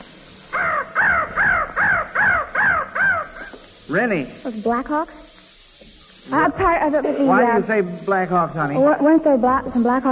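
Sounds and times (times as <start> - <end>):
crow cawing sound effect: 0.5 - 3.6
speech: 3.9 - 5.3, 6.3 - 10.1.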